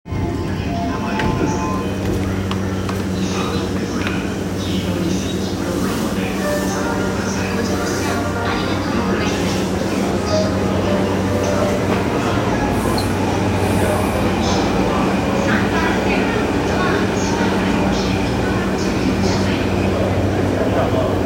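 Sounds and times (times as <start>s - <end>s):
train sounds at Nishi-Nippori on the Yamanote Line: 0.1s - 21.2s.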